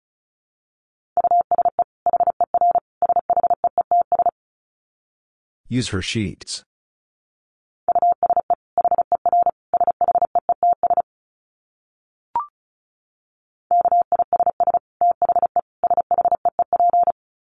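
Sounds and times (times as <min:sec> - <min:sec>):
Morse code tones at 35 words per minute: 0:01.2 - 0:04.3, 0:07.9 - 0:11.0, 0:13.7 - 0:17.1
speech: 0:05.7 - 0:06.7.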